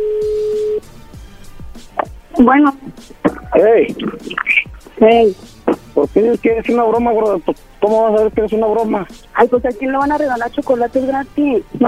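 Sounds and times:
telephone line tone: 0.0s - 0.8s
speech: 2.4s - 11.8s.

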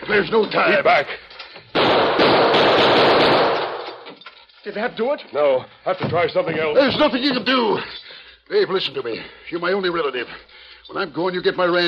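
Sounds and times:
speech: 0.1s - 1.2s, 4.6s - 11.8s
burst of gunfire at the staple of a chain: 1.8s - 4.0s.

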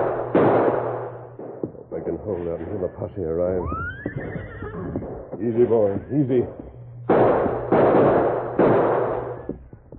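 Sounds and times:
gunshots in a western radio drama shootout: 0.0s - 2.2s, 5.0s - 9.6s
speech: 2.1s - 7.3s.

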